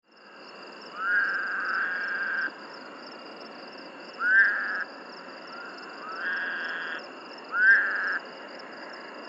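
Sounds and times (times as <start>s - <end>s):
constant high hum: 0.1s - 9.2s
Woodhouse's toad bleating: 0.9s - 2.5s, 4.2s - 4.9s, 5.5s - 8.2s.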